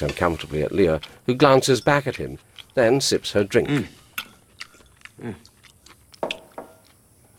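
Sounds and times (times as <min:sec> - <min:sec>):
speech: 0:00.0 - 0:04.0, 0:05.2 - 0:05.5
man munching food noisily at a kitchen table: 0:04.5 - 0:07.3.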